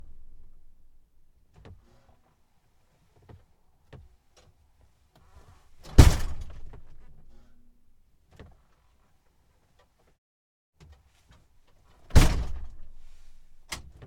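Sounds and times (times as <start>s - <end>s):
1969 Peterbilt 359 truck door: 5.9s - 7.4s, 12.1s - 13.9s.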